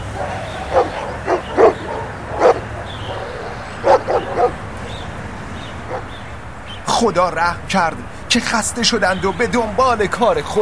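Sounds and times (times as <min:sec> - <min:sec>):
dogs barking at people who have climbed up: 0:00.0 - 0:06.6
speech: 0:07.0 - 0:10.5.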